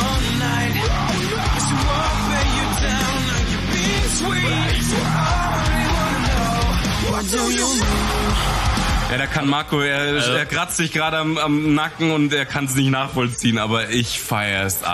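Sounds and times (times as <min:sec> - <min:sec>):
harsh screamed metalcore vocals: 0:00.0 - 0:09.4
distorted metalcore guitars: 0:00.0 - 0:12.1
speech: 0:09.2 - 0:14.9.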